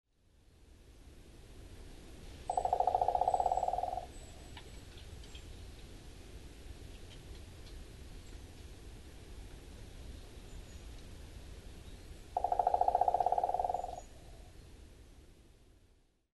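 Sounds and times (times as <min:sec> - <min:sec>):
low background hiss: 0:00.1 - 0:16.3
Owston's woodpecker drumming in Amami: 0:02.5 - 0:04.8, 0:12.4 - 0:14.1.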